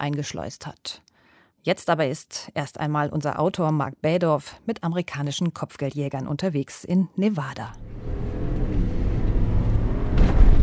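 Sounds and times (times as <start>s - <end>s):
speech: 0.0s - 7.9s
truck engine droning on a highway: 7.8s - 10.6s.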